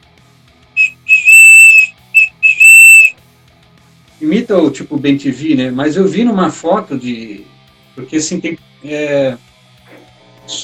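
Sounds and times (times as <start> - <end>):
ancient bird-call whistle being blown: 0.8 - 3.1
speech: 4.2 - 9.5, 10.5 - 10.6.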